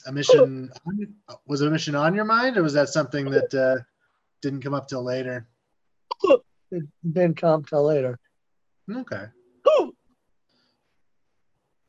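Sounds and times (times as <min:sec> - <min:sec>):
speech: 0:00.0 - 0:05.5, 0:06.2 - 0:08.2, 0:08.9 - 0:09.9
hiccup with a gulping catch in the throat: 0:00.3 - 0:00.5, 0:09.6 - 0:10.0.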